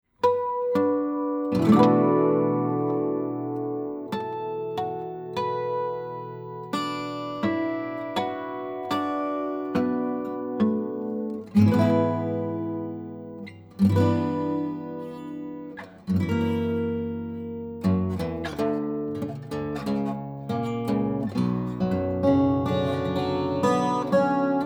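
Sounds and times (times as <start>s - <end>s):
12-string guitars: 0.2s - 24.6s.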